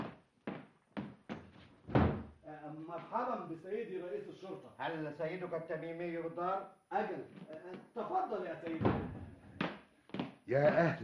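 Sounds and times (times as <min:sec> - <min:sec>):
heavy dull thuds at a house door: 0:01.9 - 0:02.3, 0:08.8 - 0:09.2
speech: 0:02.9 - 0:09.1, 0:10.5 - 0:11.0.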